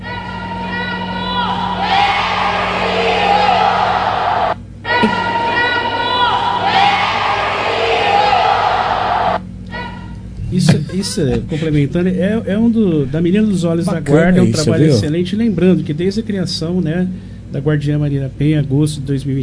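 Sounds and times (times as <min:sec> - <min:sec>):
group of young voices shouting a war cry in a gym: 0:00.0 - 0:10.0
speech: 0:11.0 - 0:19.4.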